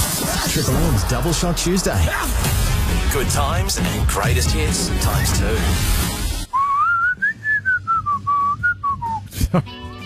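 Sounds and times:
speech: 0.6 - 6.0, 9.5 - 9.7
person whistling a short melodic tune: 6.5 - 9.3.

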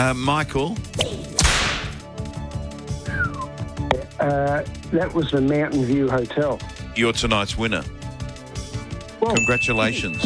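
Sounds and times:
speech: 0.0 - 1.3, 4.2 - 8.0, 9.2 - 10.2
music: 0.0 - 10.2
whip crack sound effect: 0.9 - 2.0.

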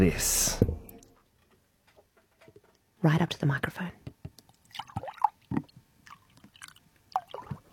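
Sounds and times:
speech: 0.0 - 0.6, 3.0 - 4.1
milk or water being poured from a vessel into a container: 4.6 - 7.7.

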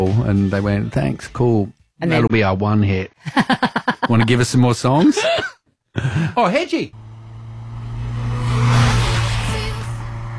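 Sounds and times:
speech: 0.0 - 7.1
laughter: 3.2 - 6.4
car engine revving: 7.0 - 10.3.

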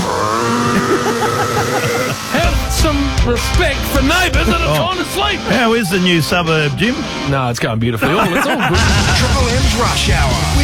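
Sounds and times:
leaf blower small engine droning: 0.0 - 2.9
laughter: 0.5 - 3.2, 3.8 - 6.3, 7.9 - 10.0
speech: 2.8 - 10.6.

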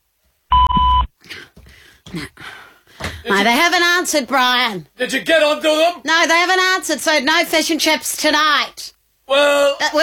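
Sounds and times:
voicemail recording electronic beep: 0.5 - 1.1
speech: 2.1 - 2.6, 3.2 - 10.0.

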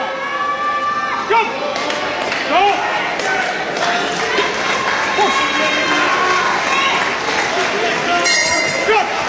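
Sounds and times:
noisy cheering crowd: 0.0 - 9.2
boxing bell ringing to end a round: 8.2 - 9.0.

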